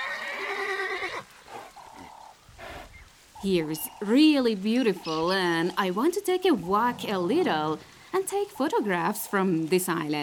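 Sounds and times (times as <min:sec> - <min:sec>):
wild horse neighing on an island in Anzali Lagoon: 0:00.0 - 0:02.9
speech: 0:03.4 - 0:10.2.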